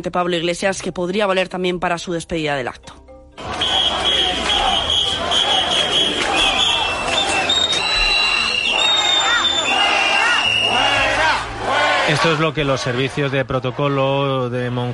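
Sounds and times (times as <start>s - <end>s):
speech: 0.0s - 3.0s, 12.1s - 14.9s
shrill sustained whistles from crowd: 3.4s - 11.1s
crowd of hundreds booing at politicians: 3.4s - 14.9s.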